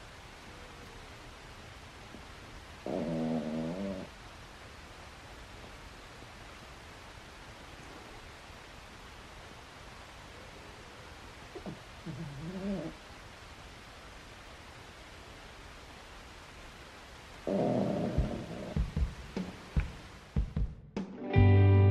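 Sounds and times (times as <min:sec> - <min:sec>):
steady hiss: 0:00.0 - 0:21.4
gentle snoring: 0:02.8 - 0:04.1, 0:11.5 - 0:13.0, 0:17.4 - 0:19.1.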